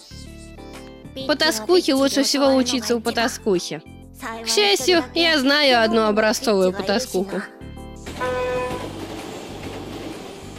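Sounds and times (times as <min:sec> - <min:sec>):
speech: 0:01.2 - 0:07.6
train rolling along rails with rumble and clatter: 0:08.0 - 0:10.5
train horn blast: 0:08.1 - 0:09.0.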